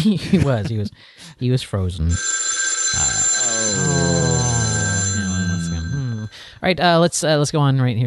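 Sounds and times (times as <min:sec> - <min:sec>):
speech: 0:00.0 - 0:02.4, 0:03.6 - 0:04.3, 0:06.6 - 0:08.0
telephone ringing with an electronic trill: 0:02.1 - 0:06.6.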